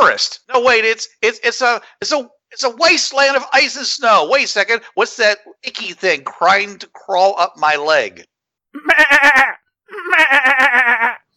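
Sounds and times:
speech: 0.0s - 11.2s
goat bleating: 8.8s - 11.2s.

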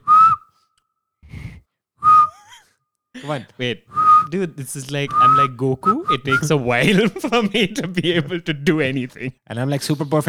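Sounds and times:
person attempting breathy whistling: 0.0s - 4.4s, 5.0s - 6.6s
laughter: 2.3s - 10.2s
speech: 3.2s - 10.2s.

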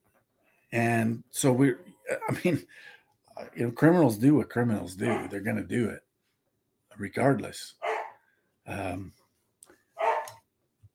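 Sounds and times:
speech: 0.7s - 6.0s, 7.0s - 7.8s, 8.7s - 9.2s
dog barking: 5.0s - 5.4s, 7.8s - 8.2s, 10.0s - 10.4s.

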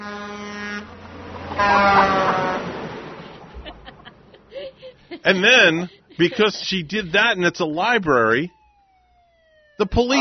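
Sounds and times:
car horn honking at a library: 0.0s - 1.0s, 1.6s - 2.9s
laughter: 3.3s - 8.2s
speech: 5.2s - 8.6s, 9.8s - 10.1s.

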